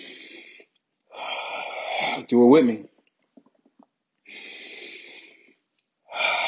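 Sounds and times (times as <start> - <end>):
deep breathing: 0.0 - 2.3, 4.2 - 6.4
speech: 2.1 - 2.9.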